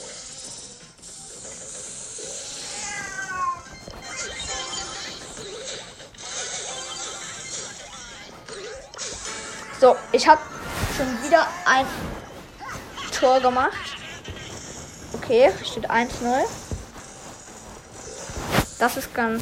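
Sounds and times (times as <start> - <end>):
busy noisy background: 0.0 - 19.4
pet cat meowing loudly and agitatedly with harsh yowls: 2.5 - 3.8
speech: 9.8 - 12.2, 13.2 - 13.9, 15.3 - 16.6, 18.8 - 19.4.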